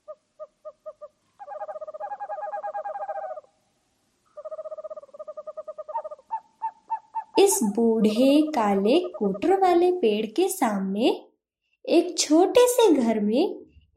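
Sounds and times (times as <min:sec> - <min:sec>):
owl chick hooting at night: 0:00.0 - 0:03.6, 0:04.3 - 0:09.7
speech: 0:07.4 - 0:11.3, 0:11.9 - 0:13.9.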